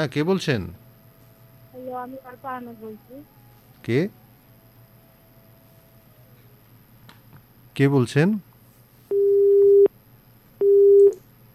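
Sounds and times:
speech: 0.0s - 0.8s, 1.9s - 4.2s, 7.8s - 8.5s
telephone busy signal after a call is cut off: 9.1s - 9.9s, 10.6s - 11.2s.

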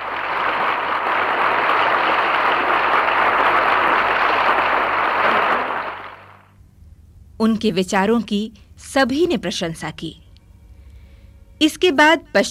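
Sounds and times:
large crowd applauding in a reverberant hall: 0.0s - 6.5s
speech: 7.4s - 10.2s, 11.6s - 12.4s.

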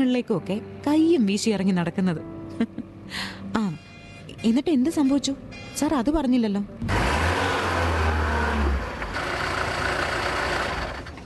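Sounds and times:
speech: 0.0s - 3.8s, 4.4s - 7.0s
bus engine rumbling: 6.8s - 11.2s.

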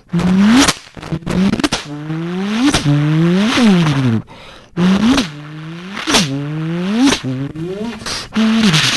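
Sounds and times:
human voice imitating a Formula 1 race car engine: 0.0s - 8.9s.

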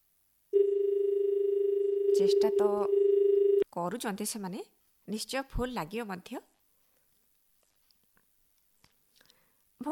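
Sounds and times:
telephone ringing for an incoming call: 0.6s - 3.6s
speech: 2.2s - 3.1s, 3.8s - 6.5s.

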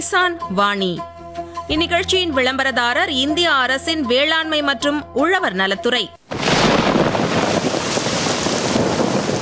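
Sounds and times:
speech: 0.0s - 6.2s
heavy rain pouring down: 6.3s - 9.4s
low thunderous rumble: 6.3s - 9.4s.

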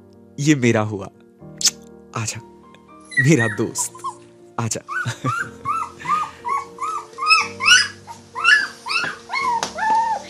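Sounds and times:
speech: 0.4s - 2.6s, 3.2s - 5.7s
puppy whimpering and yipping: 3.1s - 4.3s, 4.9s - 10.2s.

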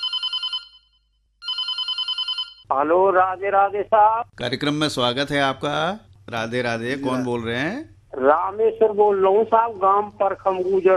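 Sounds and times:
telephone bell ringing: 0.0s - 2.7s
speech: 2.7s - 10.9s.

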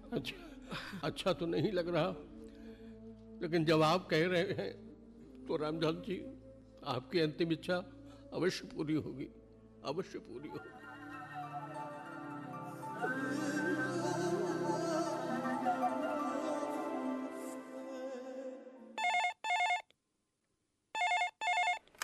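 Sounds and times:
speech: 0.1s - 2.4s, 3.4s - 4.8s, 5.4s - 10.8s
music passage: 10.3s - 18.6s
telephone ringing: 19.0s - 19.9s, 21.0s - 21.8s.

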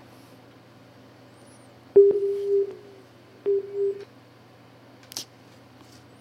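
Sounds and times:
phone line tone after a call is cut off: 2.0s - 4.1s.

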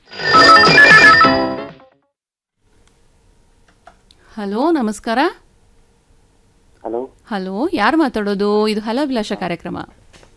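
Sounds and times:
melodic telephone ringtone for an incoming call: 0.1s - 1.6s
speech: 4.4s - 5.4s, 6.9s - 10.0s.

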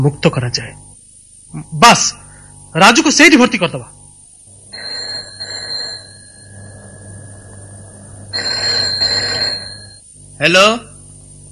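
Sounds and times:
speech: 0.0s - 0.8s, 1.5s - 4.0s, 10.4s - 10.9s
telephone ringing: 4.6s - 10.1s.

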